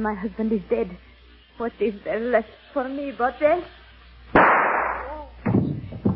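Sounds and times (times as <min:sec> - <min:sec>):
speech: 0:00.0 - 0:03.8
gunshot as a woman shoots herself: 0:04.3 - 0:05.7.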